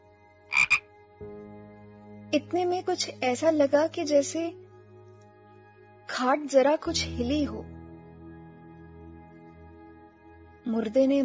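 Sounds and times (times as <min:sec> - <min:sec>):
insects: 0:00.5 - 0:00.8
loud frog croaks by a pond: 0:00.5 - 0:00.8
steady low chorus of frogs: 0:00.5 - 0:00.9
speech: 0:02.3 - 0:04.6, 0:06.1 - 0:07.7, 0:10.7 - 0:11.2.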